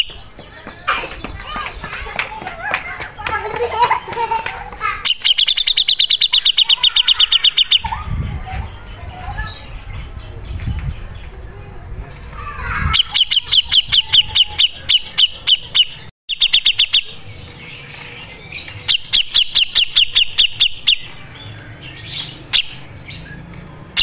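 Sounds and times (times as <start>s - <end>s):
laughter: 0.8s - 5.0s
grey-cheeked bulbul giving sharp high chips: 5.0s - 8.2s, 12.9s - 24.0s.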